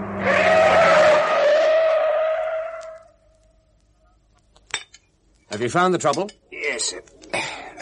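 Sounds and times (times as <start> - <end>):
car tires squealing as a car skids: 0.0 - 3.2
speech: 5.6 - 7.6.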